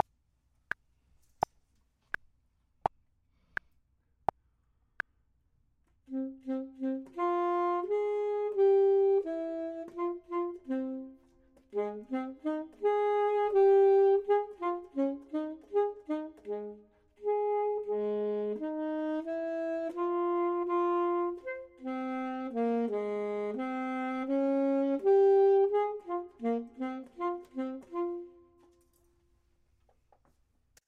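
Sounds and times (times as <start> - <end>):
saxophone: 6.0 - 29.2
clarinet: 6.1 - 29.2.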